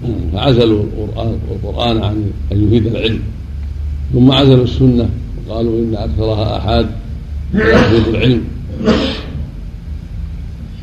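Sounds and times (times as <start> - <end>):
low steady rumble: 0.0 - 10.8
speech: 0.4 - 3.4, 4.1 - 9.2
sneeze: 7.6 - 8.2, 8.8 - 9.4.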